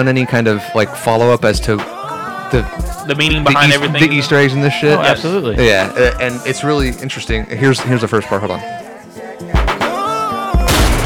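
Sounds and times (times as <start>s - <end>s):
speech: 0.0s - 1.9s, 2.5s - 8.8s
music track with melodic backing: 0.0s - 11.0s
loud sharp gunshot sound effects: 10.6s - 11.0s.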